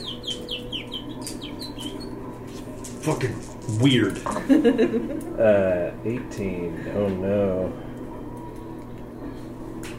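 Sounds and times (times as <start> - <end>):
bird chirps in a background music track: 0.0 - 2.4
steady low hum: 0.0 - 9.9
speech: 3.0 - 7.9
laughter: 4.2 - 5.6.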